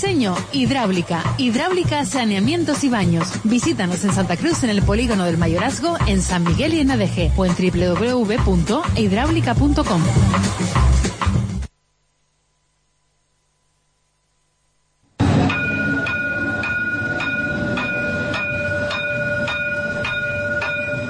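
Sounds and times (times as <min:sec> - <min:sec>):
speech: 0:00.0 - 0:11.1
tram rumbling along its tracks: 0:15.2 - 0:21.0.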